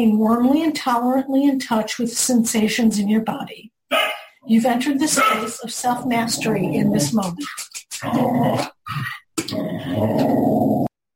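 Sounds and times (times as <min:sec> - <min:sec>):
speech: 0:00.0 - 0:10.8
dog growling and snarling: 0:05.1 - 0:07.4, 0:08.0 - 0:08.8, 0:09.5 - 0:10.9.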